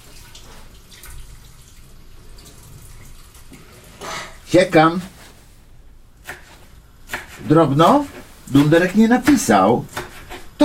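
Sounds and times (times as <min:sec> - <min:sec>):
water draining through a colander during cooking: 0:00.0 - 0:04.2
speech: 0:04.5 - 0:05.1, 0:07.5 - 0:09.9.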